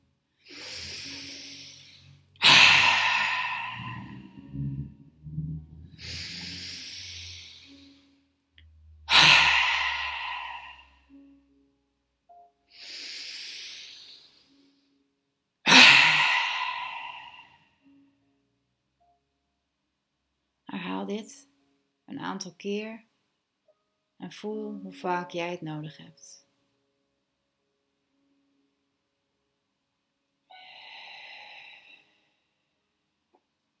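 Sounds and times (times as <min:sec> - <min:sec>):
forceful breathing in and out during a qi energy exercise: 0:00.5 - 0:04.8, 0:06.0 - 0:08.0, 0:09.1 - 0:11.0, 0:12.8 - 0:14.5, 0:15.7 - 0:17.6
speech: 0:21.1 - 0:21.5, 0:22.1 - 0:23.1, 0:24.2 - 0:26.4.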